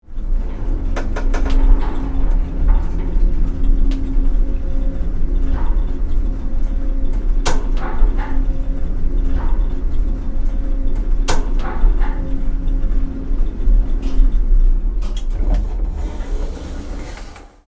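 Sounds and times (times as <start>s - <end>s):
service elevator humming while moving, heard from inside: 0.0s - 17.6s.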